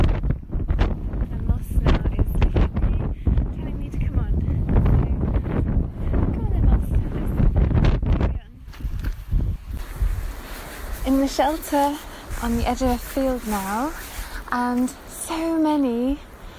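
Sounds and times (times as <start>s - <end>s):
strong gusty coastal wind buffeting the microphone: 0.0s - 16.5s
speech: 11.2s - 16.3s.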